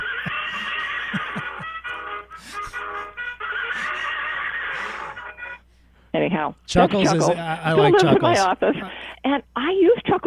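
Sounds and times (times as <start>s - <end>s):
toy stick horse electronic neigh: 0.0s - 1.4s, 3.4s - 5.3s
laughter: 0.0s - 3.1s, 6.9s - 8.9s
speech: 6.2s - 10.2s.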